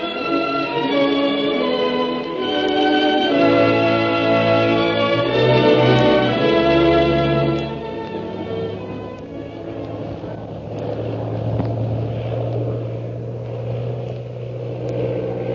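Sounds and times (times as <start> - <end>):
propeller airplane engine droning during stunting: 0.0 - 15.5.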